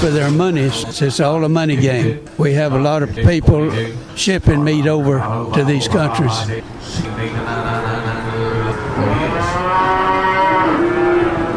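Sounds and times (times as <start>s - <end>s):
speech: 0.0s - 8.0s
busy barn-like background of more animals: 0.0s - 11.5s
cattle mooing in auction holding pens: 3.7s - 11.5s.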